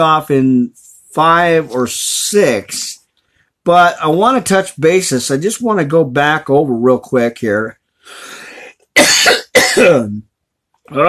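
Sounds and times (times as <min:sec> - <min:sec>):
speech: 0:00.0 - 0:03.0, 0:03.6 - 0:08.4, 0:09.0 - 0:10.3, 0:10.9 - 0:11.0
coughing: 0:09.0 - 0:10.2
throat clearing: 0:09.0 - 0:10.2.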